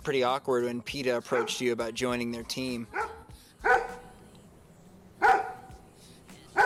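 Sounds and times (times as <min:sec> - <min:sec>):
speech: 0:00.0 - 0:03.0
dog barking: 0:01.3 - 0:01.7, 0:02.9 - 0:04.1, 0:05.2 - 0:05.8.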